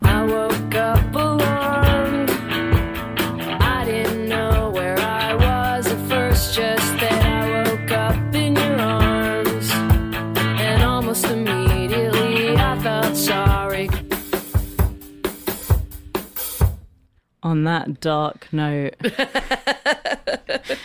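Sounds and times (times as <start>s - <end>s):
recorded rock song with drums and guitar chords: 0.0s - 16.8s
speech: 17.8s - 19.8s
laughter: 19.0s - 20.8s.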